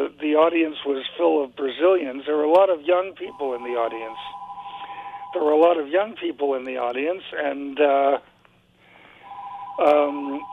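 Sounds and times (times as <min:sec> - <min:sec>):
speech: 0:00.2 - 0:04.4, 0:05.3 - 0:08.3, 0:09.8 - 0:10.5
telephone ringing during a talk before an audience: 0:03.3 - 0:05.8, 0:09.2 - 0:10.5.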